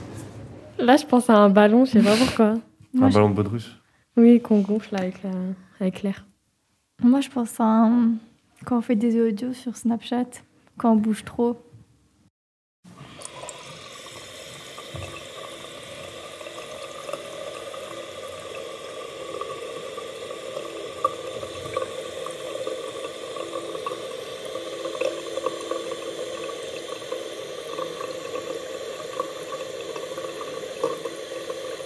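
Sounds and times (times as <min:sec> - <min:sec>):
speech: 0:00.8 - 0:06.3, 0:07.0 - 0:11.7
tap water running into a sink: 0:13.1 - 0:31.8.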